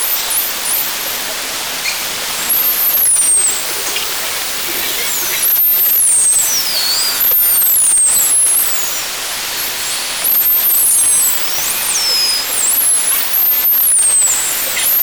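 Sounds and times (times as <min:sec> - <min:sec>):
bottlenose dolphins: 0:00.0 - 0:15.0.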